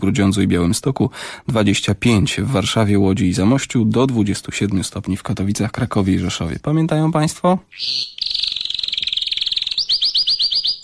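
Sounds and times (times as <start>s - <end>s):
speech: 0.0s - 8.2s
caged bird chirping: 7.6s - 10.8s.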